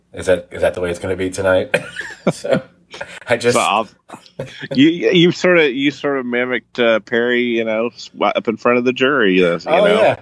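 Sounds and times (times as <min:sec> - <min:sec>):
speech: 0:00.1 - 0:10.2
person coughing in a raspy fit: 0:01.8 - 0:02.7.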